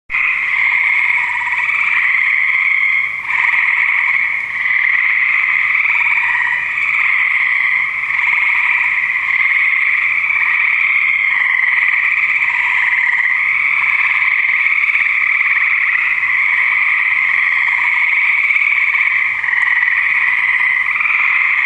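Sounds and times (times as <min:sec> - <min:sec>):
frogs in a swamp: 0:00.1 - 0:21.6.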